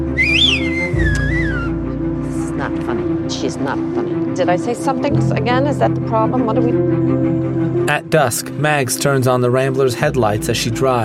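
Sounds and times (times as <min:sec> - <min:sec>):
person whistling: 0:00.1 - 0:01.8
speech: 0:02.7 - 0:11.0.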